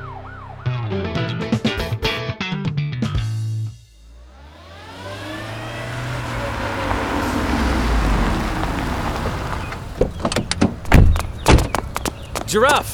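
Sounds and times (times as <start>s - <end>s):
wailing siren: 0.0s - 1.8s, 4.0s - 9.9s
vehicle engine roaring while speeding off: 0.0s - 2.2s, 3.4s - 12.9s
clunks: 4.2s - 12.9s
sharp knocks: 10.0s - 12.8s
speech: 12.5s - 12.9s.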